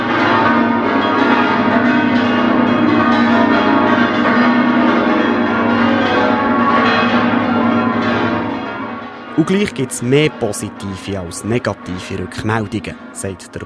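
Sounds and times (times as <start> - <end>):
eleven church bells pealing together: 0.0 - 13.6
speech: 9.4 - 13.6.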